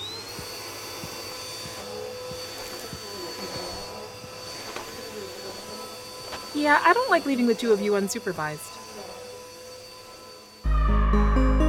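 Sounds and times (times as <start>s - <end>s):
vacuum cleaner vacuuming up spilled popcorn: 0.0s - 11.6s
speech: 6.6s - 8.7s.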